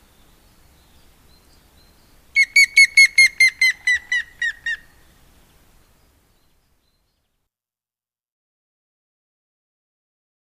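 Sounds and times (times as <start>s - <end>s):
Grey-headed woodpecker call: 2.4s - 4.9s.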